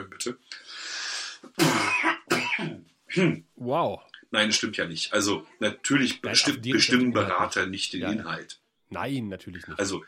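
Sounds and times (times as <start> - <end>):
speech: 0.0 - 0.8, 1.4 - 10.0
person clearing throat: 1.5 - 3.5.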